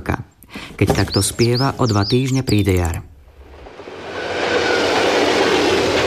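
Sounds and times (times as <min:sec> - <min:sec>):
speech: 0:00.8 - 0:03.1
express train thundering over a viaduct overhead: 0:03.7 - 0:06.0.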